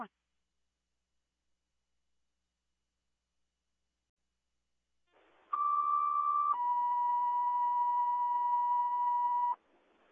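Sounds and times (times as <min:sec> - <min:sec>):
fire dispatch cancellation tone sequence: 0:05.6 - 0:09.6.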